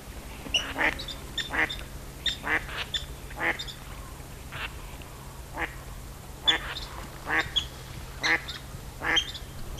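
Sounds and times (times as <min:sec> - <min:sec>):
large flock of ducks quacking on a lake: 0:00.6 - 0:03.7, 0:06.4 - 0:07.6, 0:08.2 - 0:09.7.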